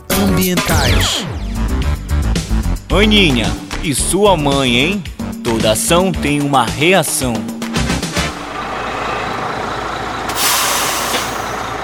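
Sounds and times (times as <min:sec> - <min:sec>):
city bus engine rumbling and idling: 0:00.0 - 0:11.8
speech: 0:00.4 - 0:02.0, 0:02.9 - 0:07.6
city bus air brakes hissing: 0:10.2 - 0:11.7.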